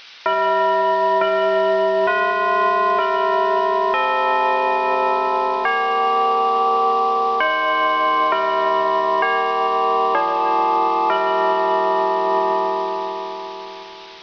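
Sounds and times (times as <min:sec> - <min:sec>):
bells: 0:00.0 - 0:14.2
house sounds: 0:00.0 - 0:14.2.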